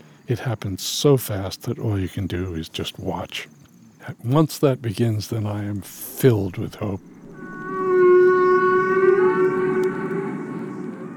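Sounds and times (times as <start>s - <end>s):
speech: 0.3s - 7.1s
humpback whale song: 5.9s - 11.1s.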